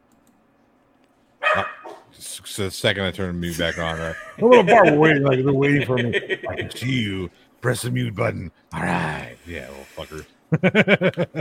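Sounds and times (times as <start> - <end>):
dog barking excitedly: 1.4 - 2.1
speech: 1.6 - 11.3
laughter: 3.4 - 7.0, 10.5 - 11.3.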